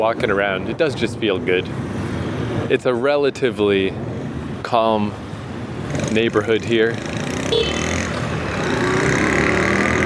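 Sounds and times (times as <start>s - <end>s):
speech: 0.0s - 2.0s, 2.6s - 5.2s, 6.1s - 7.6s
street traffic rumbling: 0.0s - 10.0s
car passing with engine and road noise: 7.0s - 10.0s.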